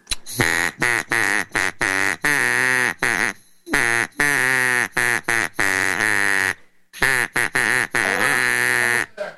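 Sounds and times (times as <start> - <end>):
mallard duck call being blown: 0.3 - 9.3.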